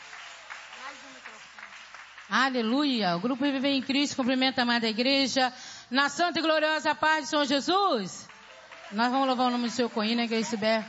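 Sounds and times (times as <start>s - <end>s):
church audience applause: 0.0s - 2.4s, 8.3s - 10.8s
speech: 0.9s - 8.3s, 8.9s - 10.8s.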